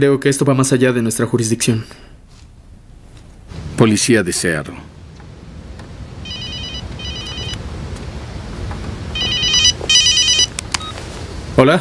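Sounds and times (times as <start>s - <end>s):
speech: 0.0s - 2.2s, 3.8s - 4.9s, 11.6s - 11.8s
low steady rumble: 0.0s - 11.6s
telephone ringing in a police department: 6.1s - 7.8s, 9.0s - 11.0s.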